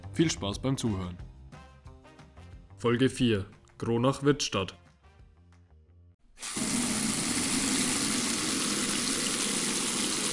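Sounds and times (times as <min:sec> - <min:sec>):
speech: 0:00.2 - 0:01.3, 0:02.8 - 0:04.8
tap water gushing into a basin for hand washing: 0:06.4 - 0:10.3.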